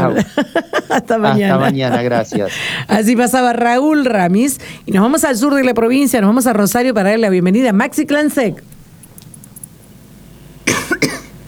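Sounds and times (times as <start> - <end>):
laughter: 0.0 - 3.1
speech: 0.2 - 8.8
person coughing: 10.7 - 11.4.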